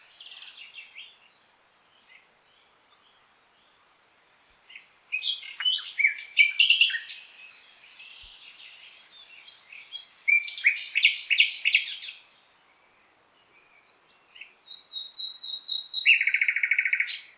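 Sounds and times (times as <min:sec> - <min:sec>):
common nightingale Luscinia megarhynchos song phrases: 0:00.0 - 0:17.3.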